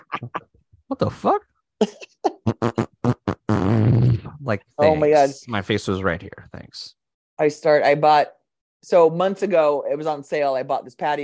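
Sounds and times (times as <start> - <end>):
speech: 0.1 - 2.1, 4.5 - 11.2
loud sputtering farting bursts: 2.3 - 4.4.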